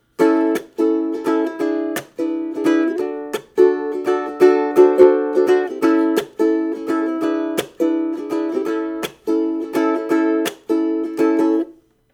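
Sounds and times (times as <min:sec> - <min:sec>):
ukulele strumming blues: 0:00.0 - 0:11.9.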